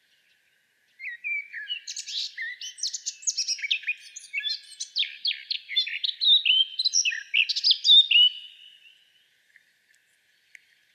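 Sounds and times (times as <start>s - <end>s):
Eurasian blackcap Sylvia atricapilla warbling song: 1.0s - 8.9s.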